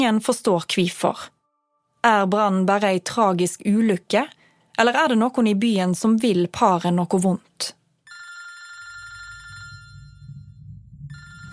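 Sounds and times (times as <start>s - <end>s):
speech: 0.0s - 1.4s, 2.0s - 7.8s
telephone ringing with bright buzzing electronic trill: 8.0s - 10.5s, 11.1s - 11.5s
low rumbling background: 9.4s - 11.5s.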